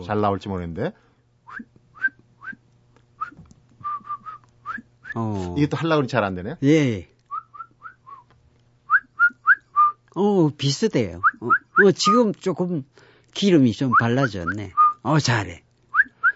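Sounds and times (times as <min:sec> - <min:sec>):
speech: 0:00.0 - 0:01.7, 0:05.2 - 0:07.1, 0:10.2 - 0:15.6
person whistling an imitation of a birdsong: 0:01.5 - 0:02.6, 0:03.2 - 0:05.2, 0:07.3 - 0:08.3, 0:08.9 - 0:10.0, 0:11.2 - 0:12.2, 0:13.9 - 0:15.1, 0:15.9 - 0:16.3.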